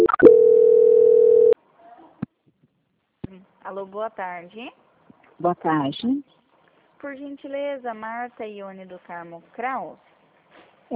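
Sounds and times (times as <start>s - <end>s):
steady single-pitched telephone tone while a call is transferred: 0.0s - 1.6s
speech: 3.7s - 4.8s, 5.4s - 6.4s, 7.0s - 10.1s.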